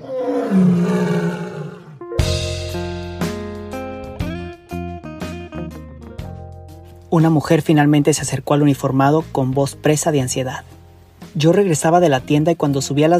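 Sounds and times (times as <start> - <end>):
lion roaring: 0.0 - 2.1
speech: 7.1 - 10.8, 11.4 - 13.1.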